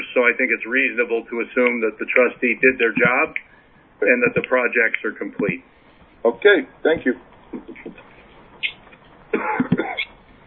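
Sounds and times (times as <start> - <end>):
speech: 0.2 - 8.7
person coughing: 9.3 - 10.1.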